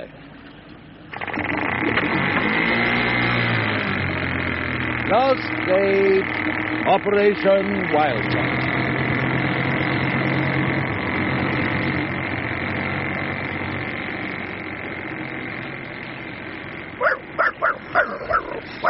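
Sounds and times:
steady droning rumble: 0.0 - 18.8
speech: 5.1 - 8.8
dog barking: 17.0 - 18.8.

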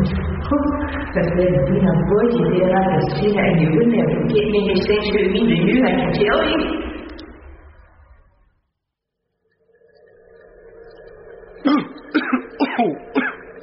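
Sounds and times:
speech: 0.5 - 6.9
harsh coughing from surgical spirit fumes: 11.6 - 13.4.

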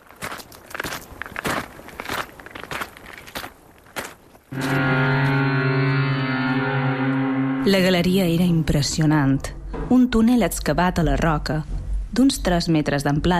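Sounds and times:
footsteps crunching across hard stony ground: 0.0 - 4.8
loud sustained tonal hum: 4.5 - 10.7
speech: 4.6 - 5.0, 7.7 - 13.3.

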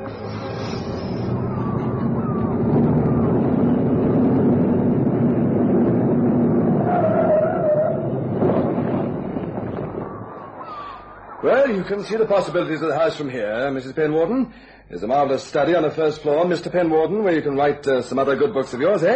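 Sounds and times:
car engine drone driving toward a large house: 0.0 - 13.0
car road rumble: 0.0 - 13.4
speech: 11.4 - 19.1.

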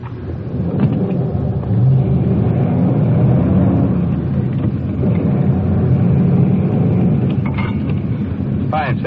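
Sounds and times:
police car engine revving as car pulls off: 0.4 - 8.8.

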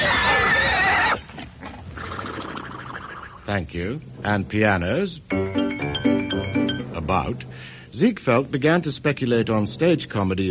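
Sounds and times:
horse neighing: 0.0 - 3.5
speech: 3.5 - 5.6, 6.4 - 10.4.

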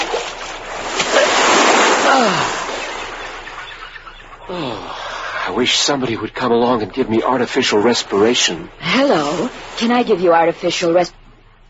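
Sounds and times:
man swimming toward the shore: 0.0 - 5.6, 7.3 - 10.2
Pacific Ocean surf washing in with a hissing roar: 0.1 - 3.8, 4.4 - 11.0
speech: 2.2 - 2.5, 5.6 - 11.2.

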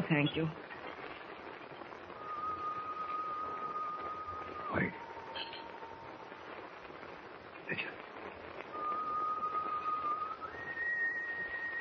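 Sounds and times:
speech: 0.1 - 0.7
constant rushing noise: 0.1 - 11.7
person whistling outside on a ship's deck: 2.2 - 5.6, 8.7 - 11.7.

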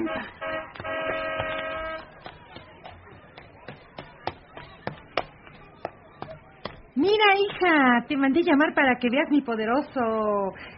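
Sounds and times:
car horn honking: 0.0 - 2.1
speech: 7.0 - 10.7.

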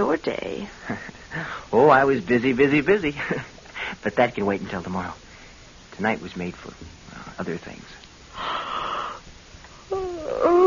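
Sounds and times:
speech: 0.0 - 5.2, 6.0 - 8.6
sleepy person yawning at home in the evening: 9.9 - 10.6.

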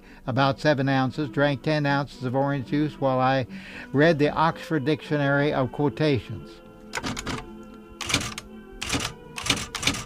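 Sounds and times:
speech: 0.2 - 7.1
mechanical typewriter keystrokes: 7.0 - 10.0.

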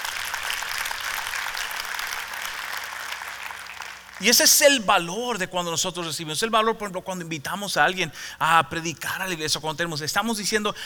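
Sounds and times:
church audience applause: 0.0 - 4.8
speech: 4.2 - 10.8.

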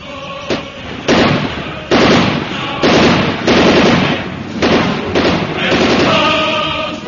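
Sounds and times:
gunfire in a radio drama shootout: 0.4 - 6.8.

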